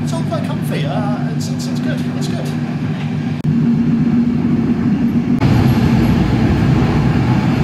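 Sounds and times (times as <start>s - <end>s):
speech: 0.4s - 3.2s
passenger train running through a long tunnel: 1.7s - 7.6s.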